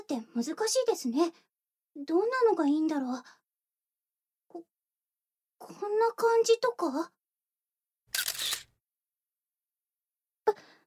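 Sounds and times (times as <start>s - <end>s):
speech: 0.1s - 3.4s, 4.5s - 4.7s, 5.6s - 7.2s
camera shutter clicking during a close-up photo shoot: 8.1s - 8.7s.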